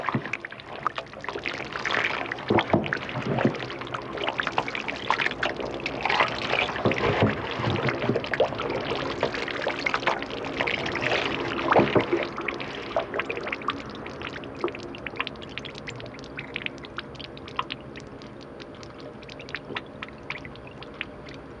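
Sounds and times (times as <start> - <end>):
paddle churning thick fermenting soy sauce mash in Japan: 0.0 - 13.8
carbon dioxide bubbles fizzing and popping in fermenting soy mash: 0.0 - 21.5.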